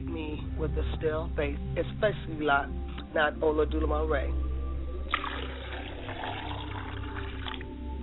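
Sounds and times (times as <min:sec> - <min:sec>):
speech: 0:00.6 - 0:04.5
water poured as a libation: 0:05.1 - 0:07.7.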